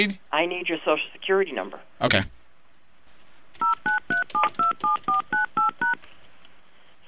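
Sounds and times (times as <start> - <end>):
speech: 0.0 - 2.4
dual-pitched telephone keypad tones as digits are entered during a call: 3.6 - 6.0.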